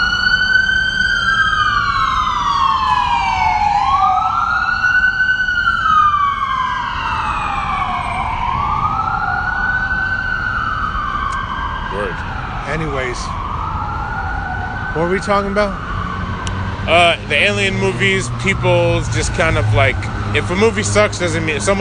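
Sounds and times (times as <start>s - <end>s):
siren wailing up and down: 0.0s - 21.7s
speech: 15.2s - 15.8s, 16.8s - 21.7s
car passing by outdoors: 15.8s - 21.6s.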